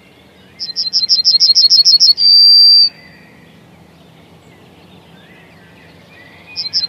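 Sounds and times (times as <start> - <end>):
yellowhammer song: 0.1 - 3.4, 4.6 - 6.8.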